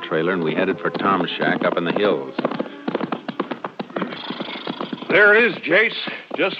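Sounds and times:
horse hooves clip-clopping at a walking pace on hard ground: 0.0 - 6.5
speech: 0.1 - 2.6, 5.1 - 6.5.

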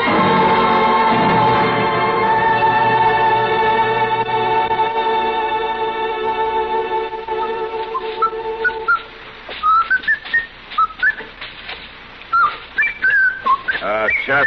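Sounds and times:
sustained tonal hum: 0.0 - 14.4
person whistling a wandering melodic tune: 7.9 - 11.3, 12.3 - 14.4.

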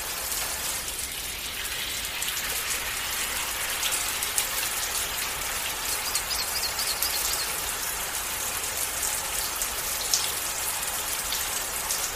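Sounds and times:
gentle April shower pattering: 0.0 - 12.1
faint high bird chirps: 5.9 - 7.6.

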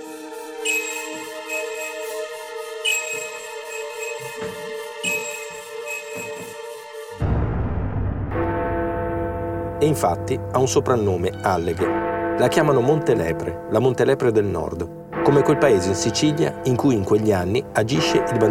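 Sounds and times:
speech: 0.6 - 1.8, 9.8 - 18.4
church bells tolling: 0.6 - 6.8, 8.3 - 18.4.

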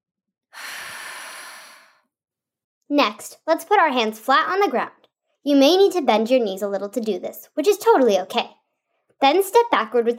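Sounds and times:
slow breath during a forward-fold yoga stretch: 0.5 - 2.1
speech: 2.9 - 8.6, 9.2 - 10.1.

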